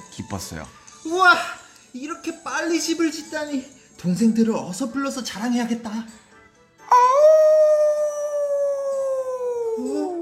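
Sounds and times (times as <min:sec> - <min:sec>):
speech: 0:00.2 - 0:06.2
wolf howling: 0:06.9 - 0:10.2.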